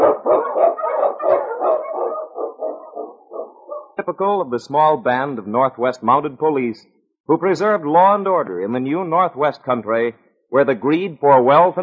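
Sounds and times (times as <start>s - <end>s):
husky sled dog lead dog barking and yipping in snowstorm in the Yukon: 0.0s - 4.0s
speech: 4.2s - 11.8s.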